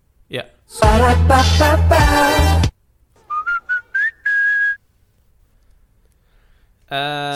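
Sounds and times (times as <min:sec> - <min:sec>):
speech: 0:00.3 - 0:02.5, 0:06.9 - 0:07.3
whistled fast-food commercial jingle: 0:03.2 - 0:04.8.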